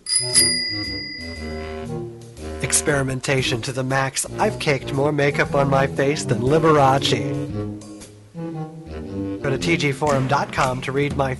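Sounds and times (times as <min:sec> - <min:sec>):
bright metallic bell ringing: 0:00.0 - 0:01.8
speech: 0:00.2 - 0:07.8, 0:09.4 - 0:11.3.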